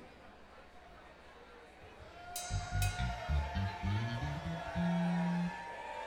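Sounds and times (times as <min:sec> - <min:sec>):
instrument tuning: 0:02.4 - 0:05.6.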